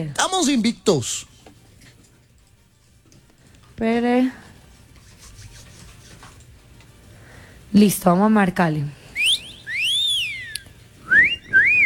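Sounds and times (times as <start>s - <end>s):
speech: 0.0s - 1.3s, 3.8s - 4.4s, 7.7s - 9.0s
person whistling a melodic tune: 9.2s - 11.8s.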